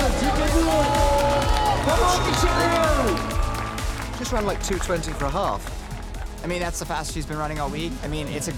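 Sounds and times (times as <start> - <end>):
spectators at a running race shouting and cheering the runners: 0.0 - 6.3
scattered clapping: 0.0 - 7.8
speech: 4.3 - 5.8, 6.4 - 8.5.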